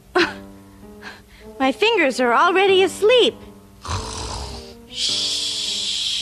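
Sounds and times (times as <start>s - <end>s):
speech: 1.5s - 3.5s
person snoring with rasping wheezy breaths: 3.8s - 6.2s.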